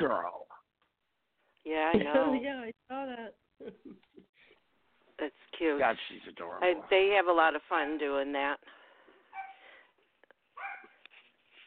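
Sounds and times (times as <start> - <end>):
speech: 0.0 - 0.4, 1.6 - 4.0, 5.2 - 8.8
Yorkie yapping: 10.6 - 11.0.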